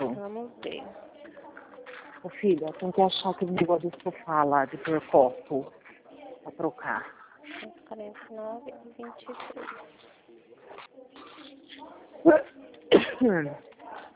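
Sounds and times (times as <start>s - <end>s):
people talking quietly: 0.0s - 14.1s
speech: 2.2s - 5.8s, 6.4s - 10.1s, 11.8s - 12.6s, 13.2s - 13.7s
sharp loud sneeze: 12.3s - 13.4s.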